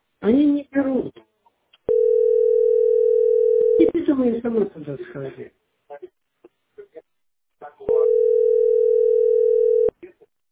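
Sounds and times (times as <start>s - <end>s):
speech: 0.2s - 1.1s, 4.2s - 5.6s
steady telephone tone: 1.9s - 3.8s, 7.9s - 9.9s.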